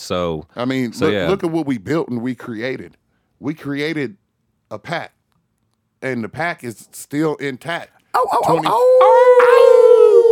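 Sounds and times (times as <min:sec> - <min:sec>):
speech: 0:00.0 - 0:05.2, 0:06.0 - 0:09.6
people howling together like wolves: 0:08.2 - 0:10.3.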